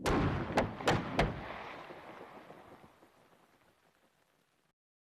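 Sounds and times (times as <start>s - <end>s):
rock blasting explosion at a dinosaur fossil dig site: 0.0s - 3.8s.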